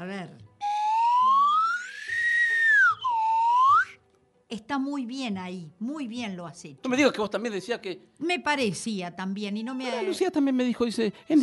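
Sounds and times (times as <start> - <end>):
speech: 0.1 - 0.5, 4.5 - 11.4
slide whistle gliding in a rising tone: 0.6 - 4.0.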